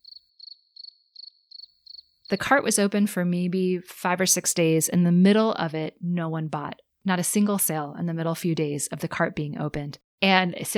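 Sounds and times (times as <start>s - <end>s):
crickets chirping: 0.0s - 2.1s
speech: 2.3s - 10.7s.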